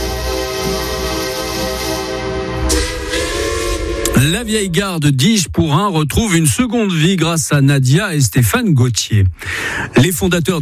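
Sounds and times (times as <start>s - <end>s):
train entering a station: 0.0s - 6.4s
speech: 4.2s - 10.5s.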